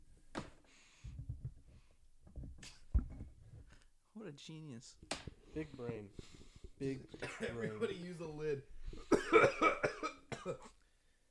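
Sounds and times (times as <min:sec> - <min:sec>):
speech: 0:04.2 - 0:10.8
person coughing harshly while smoking at a house in Utah: 0:07.1 - 0:08.1, 0:09.0 - 0:10.8.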